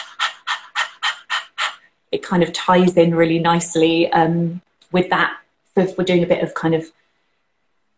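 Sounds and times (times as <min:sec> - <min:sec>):
rapid panting breaths through the mouth: 0:00.0 - 0:01.9
speech: 0:02.1 - 0:07.0.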